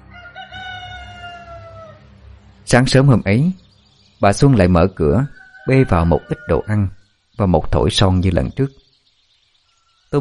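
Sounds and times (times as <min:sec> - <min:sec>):
rooster crowing outside at daybreak: 0:00.0 - 0:02.1, 0:05.1 - 0:07.0
speech: 0:02.7 - 0:03.6, 0:04.2 - 0:08.8.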